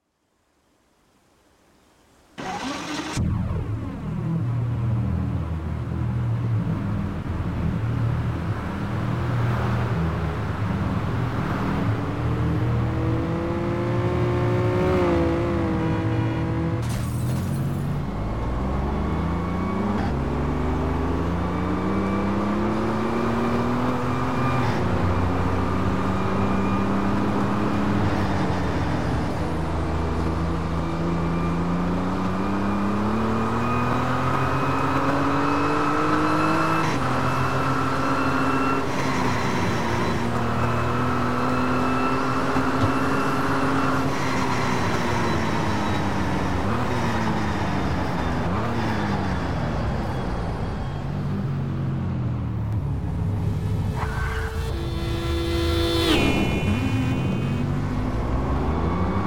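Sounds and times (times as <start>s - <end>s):
Ferrari F50 engine: 2.4s - 59.2s.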